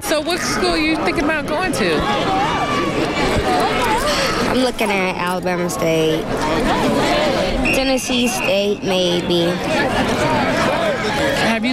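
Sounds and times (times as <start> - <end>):
crowd roar at a football game: 0.0 - 4.6, 6.0 - 11.7
speech: 0.1 - 11.7.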